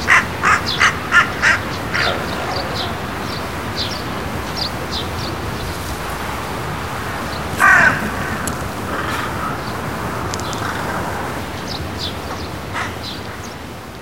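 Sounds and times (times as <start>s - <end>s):
large-billed crow cawing at Azamidani: 0.0s - 4.0s, 6.8s - 13.5s
small birds chirping: 0.0s - 13.7s
constant hiss: 0.0s - 14.0s.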